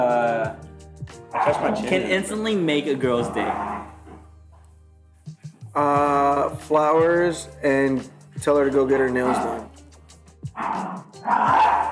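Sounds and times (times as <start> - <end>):
dog barking loud and rough: 1.4 - 1.8, 3.3 - 4.0, 9.2 - 9.7, 10.6 - 11.9
speech: 1.4 - 3.7, 5.8 - 9.8, 10.5 - 11.9.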